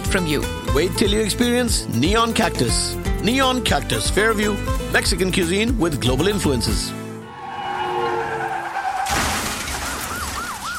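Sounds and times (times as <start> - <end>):
speech: 0.1 - 7.0
car tire screech: 7.1 - 10.4
wailing siren: 7.2 - 10.7
car accident crash impact: 8.9 - 10.7.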